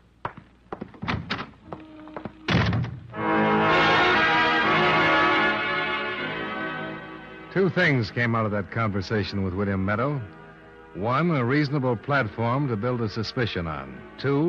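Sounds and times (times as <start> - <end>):
scattered knocks and thumps: 0.2 - 3.1
door thudding shut as someone leaves: 1.0 - 1.6, 2.5 - 3.1
long loud ringing chord: 3.1 - 14.4
speech: 7.6 - 14.4.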